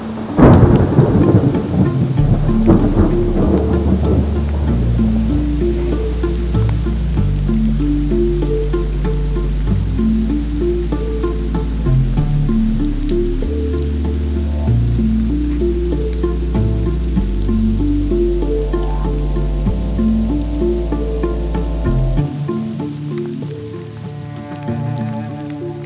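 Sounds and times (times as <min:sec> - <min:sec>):
heavy rain: 0:00.0 - 0:25.8
thunder crack and deep rolling rumbles: 0:00.2 - 0:06.1.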